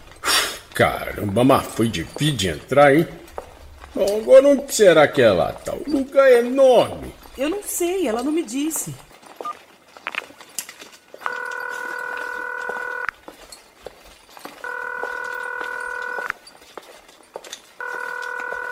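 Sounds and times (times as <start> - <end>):
faint noise: 0.0 - 18.7
speech: 0.8 - 3.2, 3.9 - 9.1
phone call ringback tones: 11.2 - 13.1, 14.6 - 16.4, 17.8 - 18.7.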